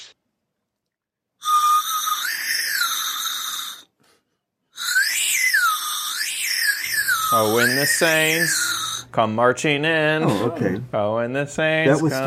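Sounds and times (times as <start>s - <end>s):
loud shrill whistle with bending sliding pitch: 1.4s - 3.9s, 4.8s - 9.1s
speech: 7.3s - 12.2s.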